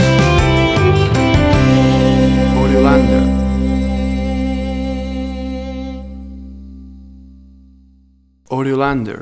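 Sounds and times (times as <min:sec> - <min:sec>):
country rodeo cowboy ballad music stinger: 0:00.0 - 0:07.2.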